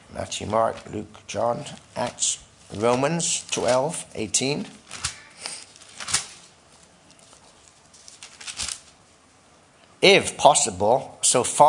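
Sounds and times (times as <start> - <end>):
speech: 0.1 - 5.1, 10.0 - 11.6
thin Bible pages being turned: 1.6 - 9.1.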